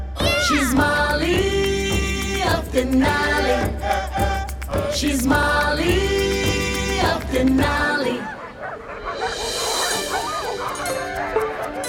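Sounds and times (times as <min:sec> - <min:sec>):
speech: 0:00.5 - 0:01.6, 0:02.5 - 0:04.3, 0:04.9 - 0:06.2
three sled dogs barking and yipping while pulling a racer around a lake: 0:03.4 - 0:11.8.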